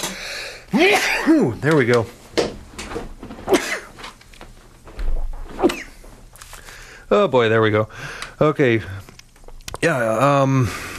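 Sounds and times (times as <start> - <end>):
speech: 0.7 - 2.2, 7.1 - 9.1, 9.8 - 10.9
person sneezing: 3.5 - 3.9, 5.4 - 6.0.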